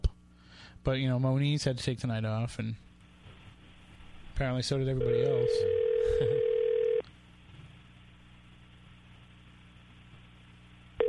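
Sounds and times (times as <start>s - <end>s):
low hum: 0.0s - 11.0s
speech: 0.8s - 2.9s, 4.4s - 6.5s
telephone dial tone during a call attempt: 5.0s - 7.0s.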